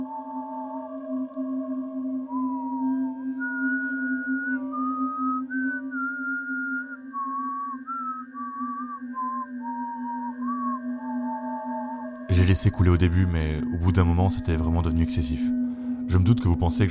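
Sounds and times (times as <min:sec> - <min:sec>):
person whistling a wandering melody loudly: 0:00.0 - 0:16.9
speech: 0:12.5 - 0:16.9.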